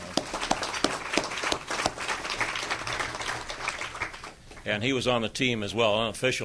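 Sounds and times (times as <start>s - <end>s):
audience applauding: 0.0s - 4.6s
speech: 4.7s - 6.4s.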